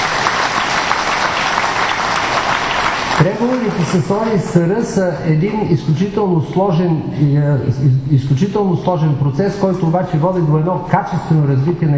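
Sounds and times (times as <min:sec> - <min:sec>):
large audience applauding: 0:00.0 - 0:04.4
speech: 0:03.2 - 0:11.9.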